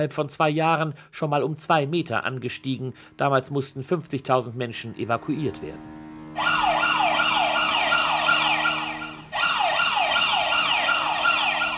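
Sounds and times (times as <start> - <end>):
speech: 0.0 - 6.6
earthquake warning siren in Naples wailing in up-and-down sweeps: 4.6 - 11.7.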